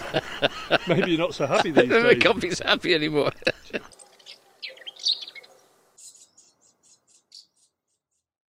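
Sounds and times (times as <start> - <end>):
laughter: 0.0 - 4.0
speech: 0.1 - 4.0
house martin giving scratchy chirrups: 3.6 - 7.7
house martin giving short high clicking notes: 3.8 - 8.0.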